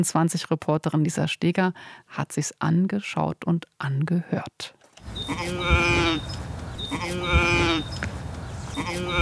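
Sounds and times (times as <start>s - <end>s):
speech: 0.0s - 6.3s, 6.9s - 8.1s, 8.8s - 9.2s
sheep bleating: 5.2s - 8.0s, 8.7s - 9.2s.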